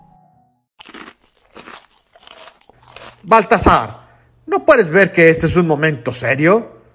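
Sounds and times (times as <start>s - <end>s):
person crunching and chewing crisp cookies: 0.8s - 3.6s
speech: 3.2s - 6.8s.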